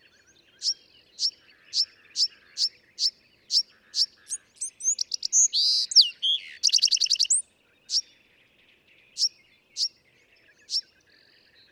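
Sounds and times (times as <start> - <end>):
Bewick's wren song: 0.0 - 8.1.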